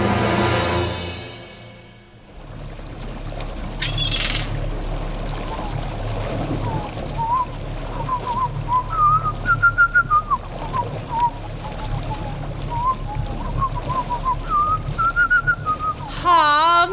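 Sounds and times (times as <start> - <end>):
steady low rumble: 0.0 - 16.9
person whistling a wavering off-key tune: 8.1 - 11.4, 12.7 - 16.0.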